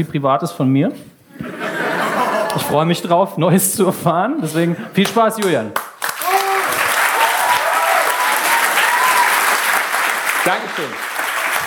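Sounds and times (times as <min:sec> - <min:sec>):
speech: 0:00.0 - 0:01.6, 0:02.6 - 0:05.8, 0:10.4 - 0:11.2
laughter: 0:01.3 - 0:02.8
comedy show audience applause: 0:05.8 - 0:11.6.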